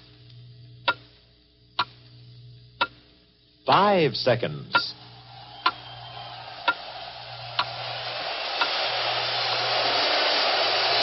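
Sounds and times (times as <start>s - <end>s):
faint low hum: 0.0s - 10.9s
clock ticking: 0.8s - 1.1s, 1.8s - 2.0s, 2.8s - 3.1s, 3.7s - 4.0s, 4.7s - 5.0s
speech: 3.7s - 5.0s.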